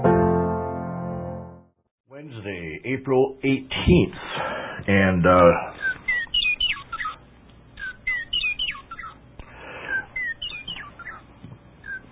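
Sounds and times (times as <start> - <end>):
speech: 2.4 - 5.8
western meadowlark singing: 5.8 - 7.2, 7.8 - 9.2, 9.9 - 12.1.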